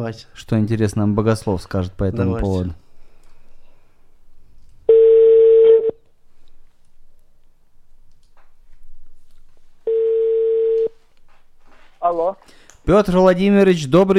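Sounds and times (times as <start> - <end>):
speech: 0.0 - 2.8, 12.9 - 14.1
telephone line tone while placing a call: 4.9 - 6.0, 9.9 - 10.9.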